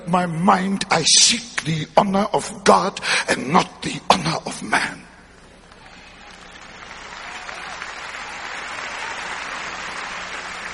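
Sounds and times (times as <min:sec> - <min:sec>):
speech: 0:00.1 - 0:05.0
large audience applause: 0:05.7 - 0:10.7.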